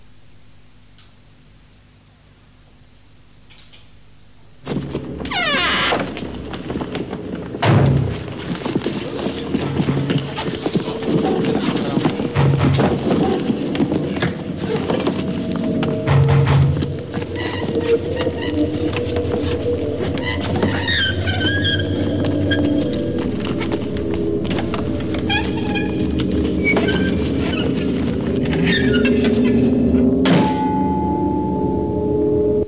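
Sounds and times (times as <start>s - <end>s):
continuous low droning background: 4.4s - 32.6s
recorded footsteps played forward on tape: 4.6s - 30.6s.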